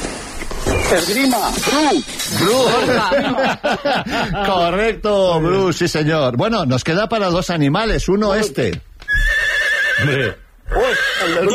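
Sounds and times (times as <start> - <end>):
speech: 0.9 - 9.2, 10.0 - 11.5
laughter: 2.3 - 5.0
horse neighing in a long high-pitched whinny: 9.1 - 11.5.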